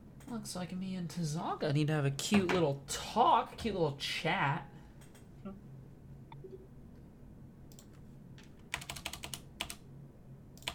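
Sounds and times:
speech: 0:00.3 - 0:04.7, 0:05.4 - 0:05.6
computer keyboard typing as notes are taken during a tabletop role-playing game: 0:07.7 - 0:09.8, 0:10.6 - 0:10.7.

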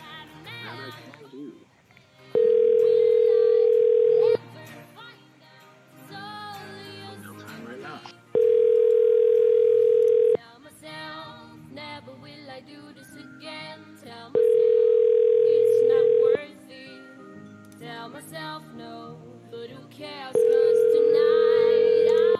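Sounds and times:
telephone ringback tone while a call is placed: 0:02.4 - 0:04.4, 0:08.4 - 0:10.4, 0:14.4 - 0:16.4, 0:20.4 - 0:22.3.

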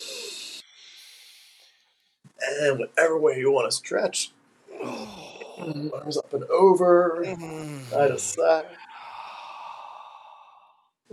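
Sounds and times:
deep breathy inhale during a stretching exercise: 0:00.0 - 0:02.2, 0:08.8 - 0:11.0
speech: 0:02.6 - 0:08.9.

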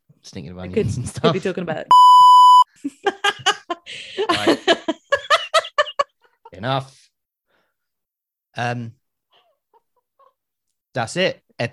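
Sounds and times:
speech: 0:00.2 - 0:02.2, 0:02.8 - 0:04.8, 0:06.6 - 0:07.0, 0:08.6 - 0:09.0, 0:10.9 - 0:11.7
loud steady censor beep: 0:01.9 - 0:02.7
people laughing: 0:02.7 - 0:06.5.

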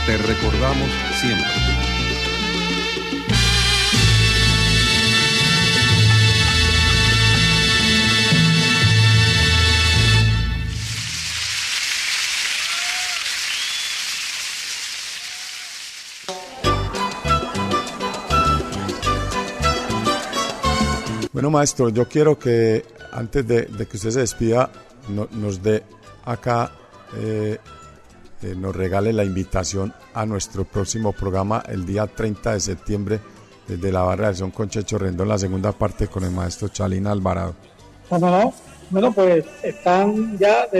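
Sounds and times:
speech: 0:00.0 - 0:01.7, 0:21.4 - 0:27.8, 0:28.4 - 0:40.7
instrumental music: 0:00.0 - 0:11.2, 0:16.3 - 0:21.3
audience applause: 0:10.7 - 0:16.5.

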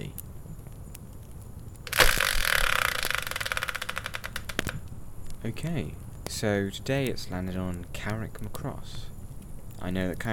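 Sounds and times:
prize-wheel spinner whirring into motion: 0:01.9 - 0:04.7
speech: 0:05.4 - 0:09.1, 0:09.8 - 0:10.3.

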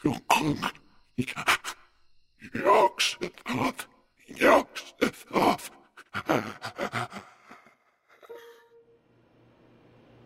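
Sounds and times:
speech: 0:00.0 - 0:01.7, 0:02.4 - 0:04.6
dying creature gasping and groaning mumbles: 0:05.0 - 0:07.8
faint low hum: 0:08.3 - 0:10.2.

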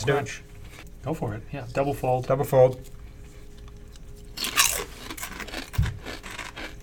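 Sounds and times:
speech: 0:00.0 - 0:03.0
crunching of crisp red-pepper potato chips being bitten and chewed: 0:03.6 - 0:06.8.

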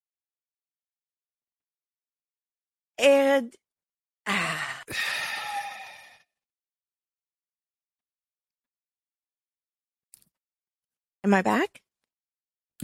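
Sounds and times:
speech: 0:03.0 - 0:03.6, 0:04.3 - 0:05.2, 0:11.2 - 0:11.8
deep breath in during a guided breathing exercise: 0:04.3 - 0:06.2.

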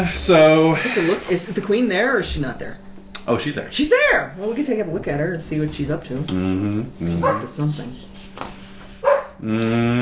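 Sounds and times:
speech: 0:00.0 - 0:08.6, 0:09.4 - 0:10.0
female dog whine-like bark: 0:07.1 - 0:07.5
female dog barking: 0:07.2 - 0:07.5, 0:09.0 - 0:09.4.

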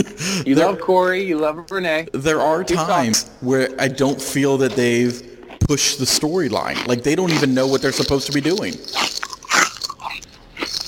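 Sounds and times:
speech: 0:00.0 - 0:09.3
chewing a crunchy snack: 0:05.5 - 0:10.8.

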